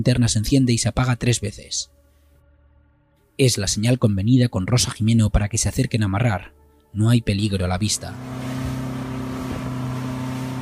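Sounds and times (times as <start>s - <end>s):
speech: 0.0s - 2.0s, 3.4s - 8.6s
Zodiac inflatable motorboat engine droning on water at night: 7.8s - 10.5s.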